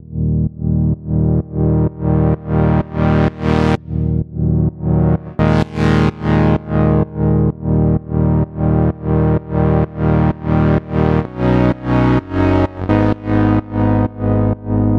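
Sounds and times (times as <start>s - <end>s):
synthesizer saw wave: 0.1s - 14.9s.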